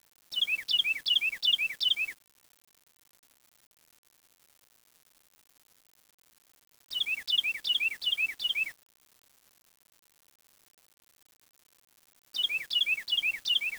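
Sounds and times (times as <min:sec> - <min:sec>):
bird chirping: 0:00.3 - 0:02.2, 0:06.9 - 0:08.7, 0:12.4 - 0:13.7.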